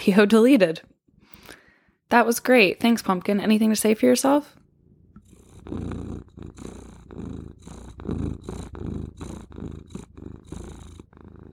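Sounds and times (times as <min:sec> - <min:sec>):
speech: 0:00.0 - 0:01.0, 0:02.1 - 0:04.6, 0:05.7 - 0:11.0
cat purring: 0:04.6 - 0:11.5.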